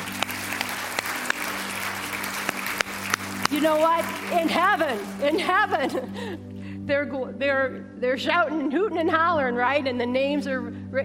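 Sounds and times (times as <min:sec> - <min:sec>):
audience clapping: 0:00.0 - 0:06.1
speech: 0:03.6 - 0:11.0.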